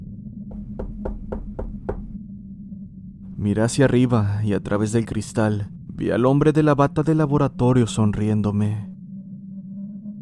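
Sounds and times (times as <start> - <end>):
soft knocks on an office door by a man: 0.5 - 2.1
speech: 3.4 - 8.9.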